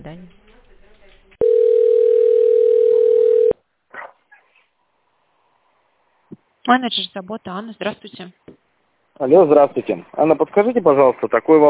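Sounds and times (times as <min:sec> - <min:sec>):
speech: 0:00.0 - 0:00.4, 0:06.7 - 0:08.6, 0:09.2 - 0:11.6
steady single-pitched telephone tone during call transfer: 0:01.4 - 0:03.6.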